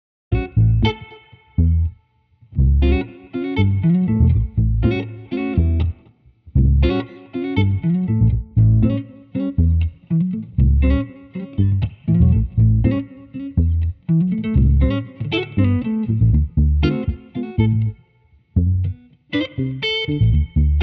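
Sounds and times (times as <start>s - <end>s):
jazzy funk bass guitar at 120 bpm: 0.3s - 2.0s, 2.6s - 18.0s, 18.6s - 20.8s.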